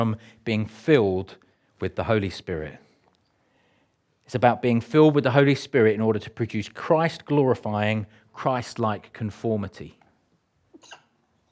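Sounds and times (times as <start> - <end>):
speech: 0.0 - 2.8, 4.3 - 10.0
stifled sneeze with intake of breath: 10.7 - 11.2.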